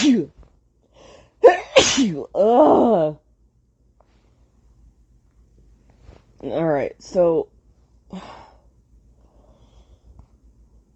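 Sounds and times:
person sneezing: 0:00.0 - 0:00.4, 0:01.4 - 0:02.3
speech: 0:01.4 - 0:03.2, 0:06.4 - 0:07.5, 0:08.1 - 0:08.4.

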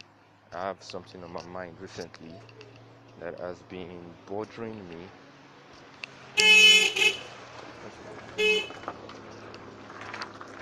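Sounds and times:
low hum of road noise: 0:00.0 - 0:10.6
speech: 0:00.6 - 0:05.2, 0:07.8 - 0:09.2
car passing by outside: 0:05.3 - 0:10.6
car horn honks: 0:06.3 - 0:07.4, 0:08.3 - 0:09.0.

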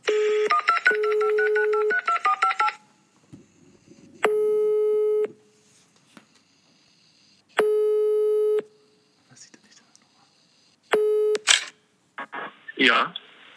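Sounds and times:
long steady telephone ringback tones: 0:00.0 - 0:03.1, 0:03.7 - 0:05.5, 0:06.4 - 0:08.7
electronic telephone dialing tones: 0:00.0 - 0:05.4, 0:06.4 - 0:08.7, 0:10.4 - 0:11.7
speech: 0:12.8 - 0:13.2.

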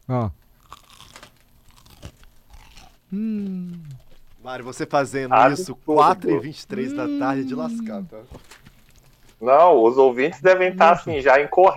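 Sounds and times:
speech: 0:00.1 - 0:00.4, 0:03.1 - 0:08.6, 0:09.4 - 0:11.7
crispy fried codfish ball being bitten and chewed: 0:00.5 - 0:04.6.

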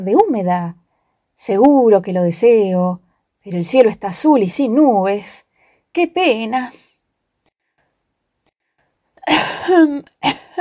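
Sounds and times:
speech: 0:00.0 - 0:00.8, 0:01.4 - 0:06.8, 0:09.3 - 0:10.5
narrator imitating a cough: 0:09.2 - 0:10.5.

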